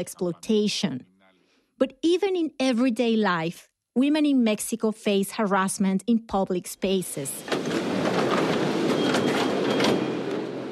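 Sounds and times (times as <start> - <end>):
speech: 0.0 - 1.1, 1.8 - 7.8
subway train rumbling through a station: 7.4 - 10.7.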